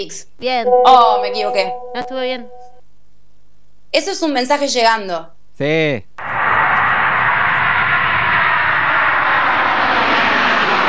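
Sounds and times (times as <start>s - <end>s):
speech: 0.0s - 2.6s, 3.9s - 6.2s
airplane engine roaring: 6.2s - 10.8s.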